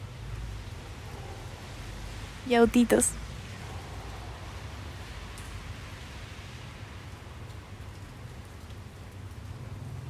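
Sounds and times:
steady dense rain hissing: 0.0s - 10.0s
speech: 2.5s - 3.2s.

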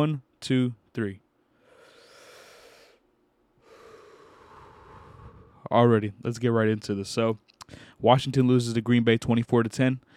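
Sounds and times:
speech: 0.0s - 1.2s, 5.7s - 10.1s
breathing in and out: 1.4s - 5.7s, 7.6s - 8.0s.

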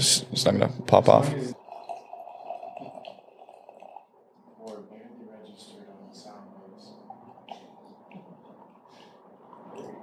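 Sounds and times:
speech: 0.0s - 1.6s
liquid pouring from a container: 1.4s - 4.8s, 5.5s - 10.0s.

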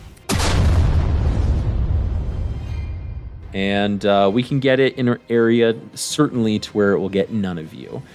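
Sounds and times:
fantasy fireball spell explosion sound effect: 0.3s - 3.6s
speech: 3.5s - 8.1s.

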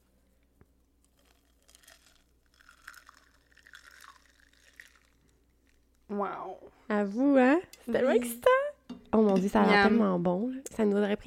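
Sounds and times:
liquid pouring into a glass over small ice cubes: 1.1s - 6.0s
speech: 6.1s - 11.2s.

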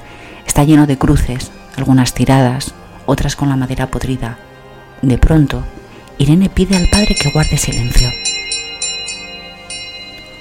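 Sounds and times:
speech: 0.6s - 8.5s
small bell ringing: 6.7s - 10.3s.

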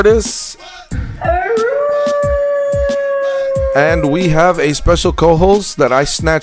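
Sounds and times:
speech: 0.0s - 1.4s, 3.7s - 6.4s
rhythmic low thumping beat: 0.0s - 5.6s, 6.2s - 6.4s
radio producer howling like a wolf: 1.2s - 4.2s.

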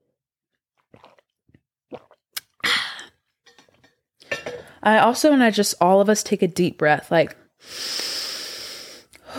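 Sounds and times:
faint swallowing: 0.7s - 3.9s
sipping water from a glass: 0.7s - 4.8s
light clink of a glass: 3.5s - 4.7s
speech: 4.8s - 7.8s.

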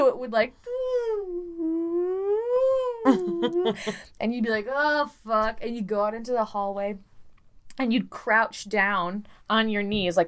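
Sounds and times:
speech: 0.1s - 1.0s, 3.0s - 7.1s, 7.8s - 10.2s
person imitating a rotating tornado drill siren: 0.7s - 3.8s
laughter: 3.0s - 4.0s.

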